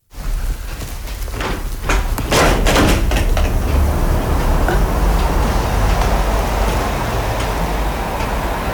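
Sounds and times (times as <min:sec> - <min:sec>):
brief knocks and clatters: 0:00.2 - 0:08.7
constant loud roar of passing road traffic: 0:01.7 - 0:08.7.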